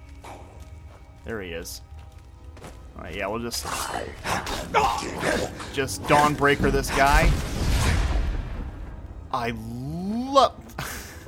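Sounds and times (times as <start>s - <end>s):
speech: 1.2s - 1.9s, 3.0s - 7.5s, 9.3s - 10.6s
drawn-out wavering vocal groan of a draugr: 3.6s - 7.2s
video game magic sword explosion in a cave: 6.1s - 9.2s.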